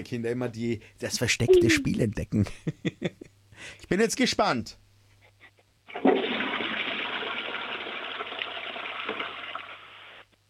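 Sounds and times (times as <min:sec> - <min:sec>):
speech: 0:00.0 - 0:04.8
toilet flushing: 0:05.9 - 0:10.1.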